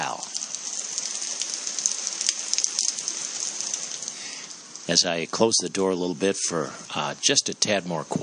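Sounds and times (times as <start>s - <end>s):
heavy rain pouring outside and beating on a deck and roof: 0.0s - 8.2s
speech: 4.9s - 8.2s.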